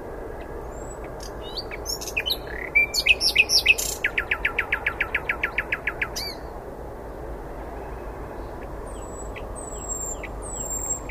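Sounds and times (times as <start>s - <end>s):
Common nightingale Luscinia megarhynchos song: 0.7s - 6.5s, 8.9s - 11.0s.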